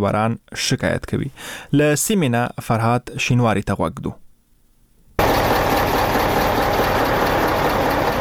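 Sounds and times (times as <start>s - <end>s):
speech: 0.0s - 4.2s
idling engines of goods-laden trucks waiting at a border crossing: 5.2s - 8.1s.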